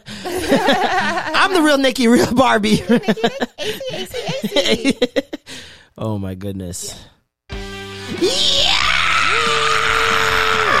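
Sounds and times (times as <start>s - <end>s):
laughter: 0.0s - 5.5s
speech: 0.2s - 7.2s, 8.1s - 8.7s
person screaming: 8.1s - 10.7s.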